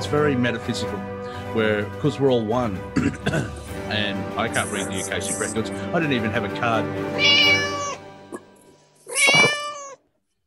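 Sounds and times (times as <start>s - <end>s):
speech: 0.1s - 7.7s
cat meowing: 7.1s - 8.0s, 9.0s - 10.0s.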